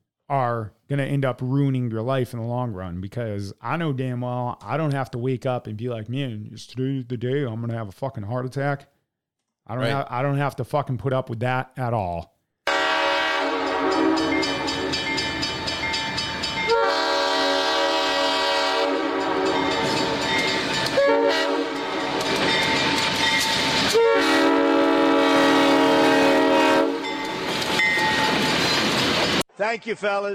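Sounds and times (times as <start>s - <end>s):
speech: 0.3s - 8.9s, 9.7s - 12.3s, 29.7s - 30.3s
train horn blaring: 12.7s - 15.1s, 16.7s - 22.4s, 23.9s - 27.2s
passing train rumbling: 13.6s - 26.3s, 26.9s - 29.4s.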